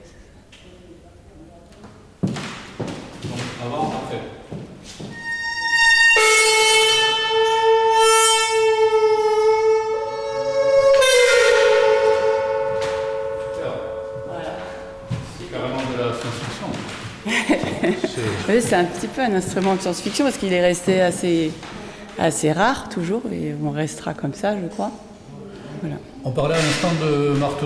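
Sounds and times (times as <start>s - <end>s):
speech: 3.6s - 4.4s, 18.5s - 25.1s, 25.8s - 27.6s
metallic gong-like tone from a tam gong loudspeaker: 5.2s - 16.5s
laughter: 17.2s - 18.9s.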